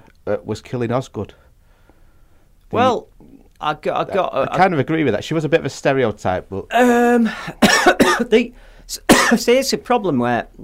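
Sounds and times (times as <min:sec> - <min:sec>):
speech: 0:00.3 - 0:01.4, 0:02.7 - 0:10.6
harsh chesty coughs: 0:07.3 - 0:08.4, 0:09.1 - 0:09.5.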